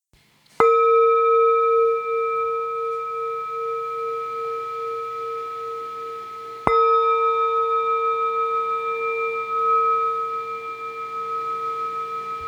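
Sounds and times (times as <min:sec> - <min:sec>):
black Tibetan singing bowl 347 g: 0:00.6 - 0:12.4.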